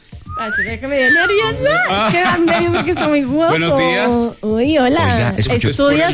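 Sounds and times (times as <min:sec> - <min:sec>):
person attempting to whistle: 0:00.2 - 0:01.6
speech: 0:00.4 - 0:06.1
laughter: 0:01.0 - 0:04.1.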